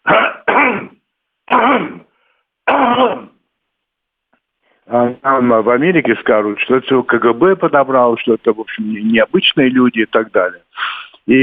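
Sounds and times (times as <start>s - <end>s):
throat clearing: 0.0s - 2.1s, 2.7s - 3.4s
person coughing: 0.0s - 3.4s
speech: 4.9s - 11.4s.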